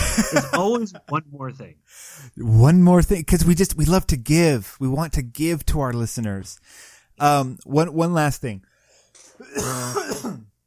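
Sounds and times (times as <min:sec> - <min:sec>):
laughter: 0:00.0 - 0:01.2
speech: 0:00.2 - 0:08.7, 0:09.4 - 0:10.5
person coughing with throaty clearing: 0:09.4 - 0:10.5.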